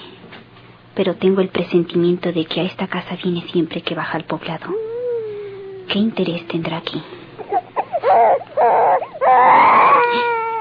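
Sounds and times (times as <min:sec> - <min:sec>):
speech: 0:01.0 - 0:04.9, 0:05.9 - 0:07.2
child crying and wailing in a house: 0:04.7 - 0:06.8, 0:07.4 - 0:10.5.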